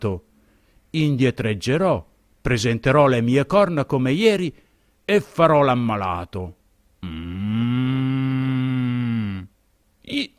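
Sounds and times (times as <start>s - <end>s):
speech: 0.0s - 0.3s, 0.9s - 7.9s, 10.1s - 10.3s
ox mooing: 7.0s - 9.5s.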